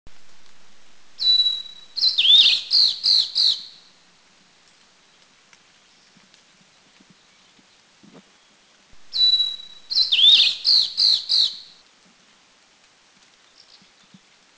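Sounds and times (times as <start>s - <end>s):
Steere's Liocichla Liocichla steerii duet at Anmashan in Taiwan: 1.2s - 3.8s, 8.4s - 11.8s.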